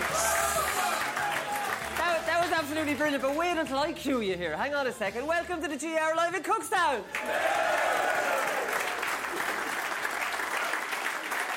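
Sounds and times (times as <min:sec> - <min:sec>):
live audience cheering: 0:00.0 - 0:02.1, 0:07.2 - 0:11.5
live audience clapping: 0:00.0 - 0:04.3, 0:07.1 - 0:11.5
speech: 0:02.6 - 0:08.0.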